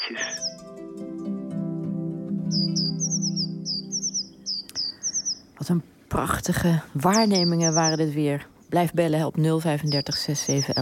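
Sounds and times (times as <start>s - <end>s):
late-fledged young great tits and blue tits calling from a hawthorn bush: 0.0s - 0.6s, 2.4s - 5.8s, 6.5s - 10.7s
speech: 5.6s - 10.7s.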